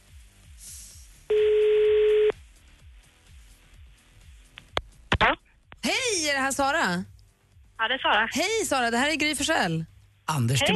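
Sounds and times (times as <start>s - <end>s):
faint rhythmic low background: 0.0s - 10.7s
buzzy phone ringback tone of a call waiting to be answered: 1.3s - 2.3s
speech: 6.3s - 7.2s, 7.8s - 10.7s.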